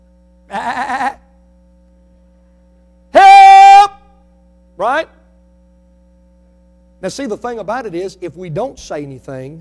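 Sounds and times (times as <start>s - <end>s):
faint steady hum: 0.0s - 9.5s
single loud wavering sheep bleat: 0.5s - 1.3s
speech: 0.6s - 1.0s, 4.8s - 5.2s, 7.0s - 9.5s.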